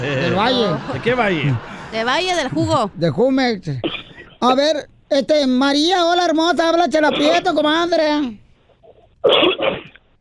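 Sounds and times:
laughter: 0.0s - 3.1s
speech: 0.0s - 8.4s, 9.2s - 9.8s
person sneezing: 9.3s - 10.0s.

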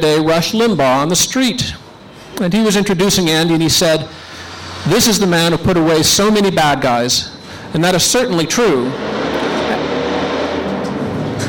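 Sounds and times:
speech: 0.0s - 1.8s, 2.4s - 4.2s, 4.8s - 9.2s
heavy truck passing outside with engine rumble and road noise: 4.1s - 6.2s, 7.4s - 11.4s.

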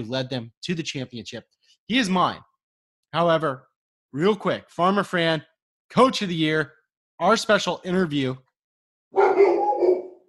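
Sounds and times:
speech: 0.0s - 2.5s, 3.1s - 8.4s
dog barking excitedly: 9.1s - 10.2s.

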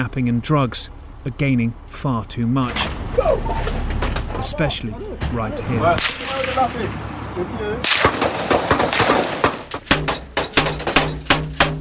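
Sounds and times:
speech: 0.0s - 3.8s, 4.4s - 8.2s
gunfire rounds striking an armored vehicle: 2.6s - 4.6s, 5.2s - 6.9s, 7.8s - 11.7s
gunfire during a gang gunfight with police: 7.8s - 11.7s.

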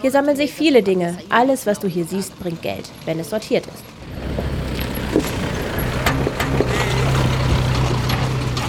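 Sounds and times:
speech: 0.0s - 4.3s
rattly small truck engine droning on a garbage dump: 1.2s - 8.6s
truck clanking and knocking over uneven ground: 3.8s - 8.6s.

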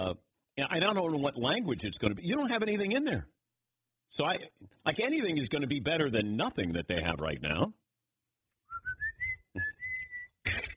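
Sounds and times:
speech: 0.0s - 3.4s, 4.1s - 7.8s
short whistles signalling pitches at a ballpark: 8.6s - 10.5s.

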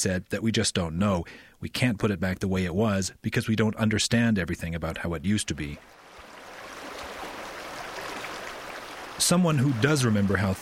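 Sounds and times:
speech: 0.0s - 6.0s, 9.2s - 10.6s
snow-fed creek flowing through sagebrush below the Continental Divide: 5.4s - 10.6s.

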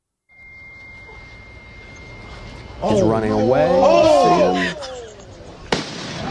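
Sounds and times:
agitated yelling voices: 2.7s - 5.4s
speech: 2.8s - 4.8s
firecracker exploding: 5.7s - 6.2s.

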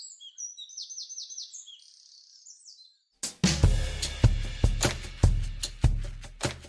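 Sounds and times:
wren singing a high rattling trill: 0.0s - 3.2s
loud rhythmic music with heavy beats: 3.2s - 6.6s.

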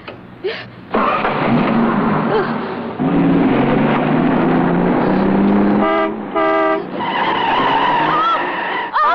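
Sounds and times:
speech: 0.4s - 1.1s
car tires screeching in a skid as car swerves: 0.9s - 9.0s
car horn blasts: 5.3s - 8.6s.

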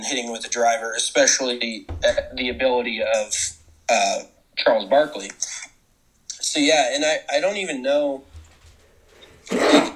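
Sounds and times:
speech: 0.0s - 5.6s, 6.5s - 8.3s, 9.5s - 9.7s
loud breathy sneeze: 9.5s - 9.9s.

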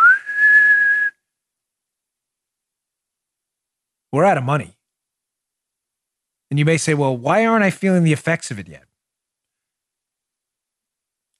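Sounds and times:
person whistling one clear note: 0.0s - 1.2s
speech: 4.1s - 4.8s, 6.5s - 8.9s.

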